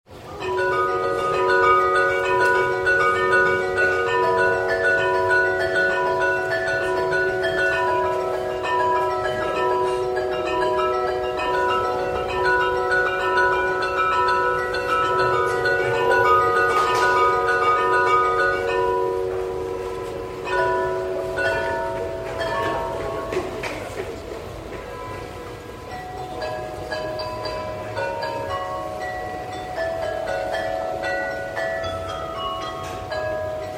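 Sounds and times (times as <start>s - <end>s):
glockenspiel in Bremen: 0.1s - 33.7s.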